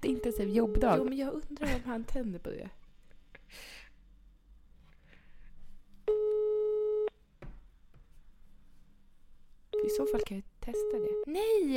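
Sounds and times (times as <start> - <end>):
telephone busy signal: 0.0 - 1.2, 6.1 - 7.1, 9.8 - 10.2
speech: 0.2 - 2.8, 3.5 - 3.8, 9.9 - 11.7.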